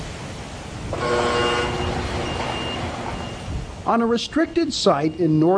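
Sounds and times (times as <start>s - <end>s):
CO2 gas escaping from pipes with a rushing hiss: 0.9s - 4.8s
high whining tone: 0.9s - 5.4s
speech: 3.9s - 5.5s.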